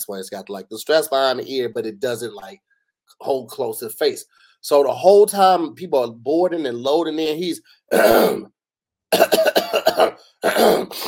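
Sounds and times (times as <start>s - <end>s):
speech: 0.0s - 11.0s
man imitating a plane passenger clearing his throat: 7.9s - 8.5s, 9.1s - 11.0s
man imitating a plane passenger coughing: 7.9s - 8.5s, 9.1s - 11.0s.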